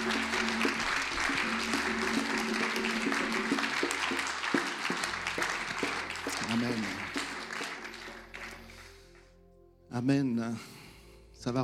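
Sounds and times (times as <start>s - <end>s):
church congregation applauding in praise during a worship service: 0.0s - 9.3s
speech: 10.0s - 10.8s, 11.4s - 11.6s.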